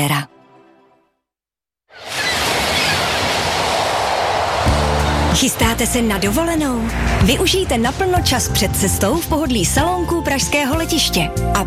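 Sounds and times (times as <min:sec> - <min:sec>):
speech: 0:00.0 - 0:00.4, 0:05.4 - 0:11.6
tram or rail vehicle rumbling: 0:02.4 - 0:10.5.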